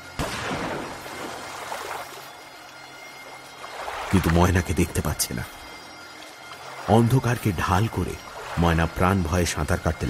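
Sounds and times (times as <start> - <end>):
river water rushing splash from gunshots: 0.0 - 10.0
gunshots hitting river water: 0.2 - 2.1
speech: 4.1 - 5.6, 6.9 - 10.0.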